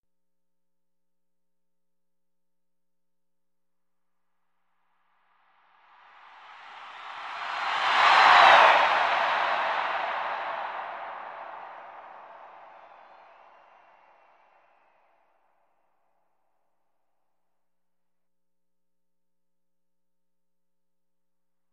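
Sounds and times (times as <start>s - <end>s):
crowd cheering in a sports arena: 6.1s - 15.0s.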